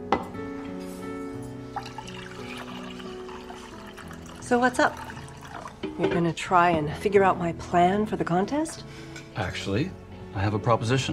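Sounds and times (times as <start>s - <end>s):
coffee pouring into a mug in a steady stream: 1.7s - 5.9s
speech: 4.5s - 5.1s, 5.9s - 11.1s.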